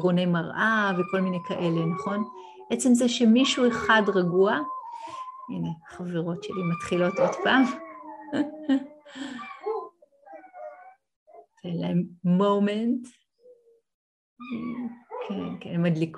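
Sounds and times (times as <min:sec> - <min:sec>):
speech: 0:00.0 - 0:09.5, 0:11.6 - 0:13.2, 0:14.4 - 0:16.1
foxes howling in rising wavering cries: 0:00.6 - 0:11.0.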